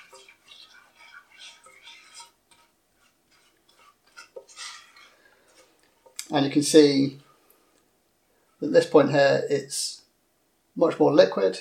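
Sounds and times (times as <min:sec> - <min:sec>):
spoon stirring chocolate and sugar in a pan: 0:00.0 - 0:07.5
speech: 0:06.3 - 0:07.2, 0:08.7 - 0:10.0, 0:10.8 - 0:11.5.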